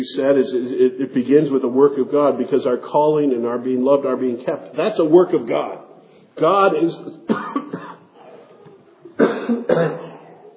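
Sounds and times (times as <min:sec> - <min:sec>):
speech: 0:00.0 - 0:07.4
harsh throaty coughs after swallowing a bug: 0:07.2 - 0:08.6, 0:09.2 - 0:10.5.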